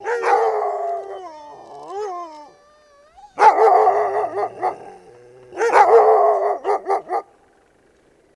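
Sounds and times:
dogs barking outdoors: 0:00.0 - 0:01.1, 0:03.3 - 0:07.4.

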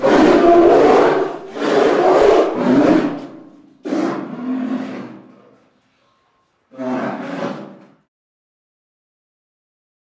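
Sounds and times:
bear growling and roaring with deep breathy rasping roars: 0:00.0 - 0:05.4, 0:06.7 - 0:07.9.

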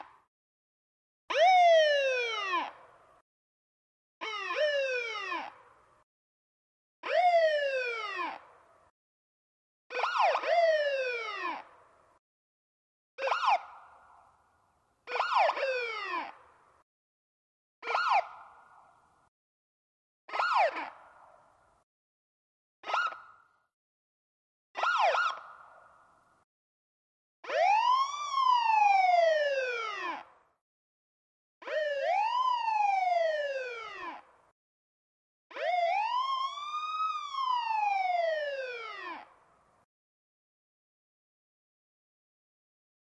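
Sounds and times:
ambulance wailer siren: 0:01.3 - 0:02.8, 0:04.2 - 0:05.6, 0:07.1 - 0:08.5, 0:09.9 - 0:11.7, 0:13.3 - 0:13.7, 0:15.1 - 0:16.4, 0:20.3 - 0:20.9, 0:24.8 - 0:25.5, 0:27.5 - 0:30.3, 0:31.6 - 0:34.3, 0:35.5 - 0:39.3.

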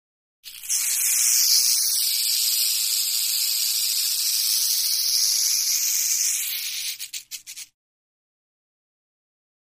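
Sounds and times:
rattlesnake rattle buzzing: 0:00.5 - 0:07.7.

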